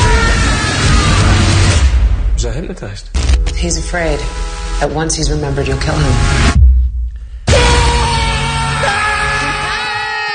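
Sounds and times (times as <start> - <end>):
several people screaming together: 0.0 - 1.8, 7.5 - 10.3
low rumble: 0.0 - 8.6
speech: 2.6 - 6.6.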